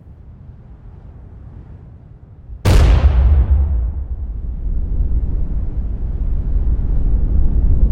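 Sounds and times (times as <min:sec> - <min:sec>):
first atomic bomb explosion in the New Mexico desert: 0:02.6 - 0:07.8.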